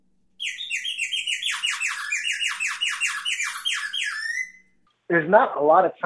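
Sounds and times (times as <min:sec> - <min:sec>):
bird whistle sound effect trilling with shrill downward-sliding chirps: 0:00.4 - 0:04.7
speech: 0:05.1 - 0:06.0.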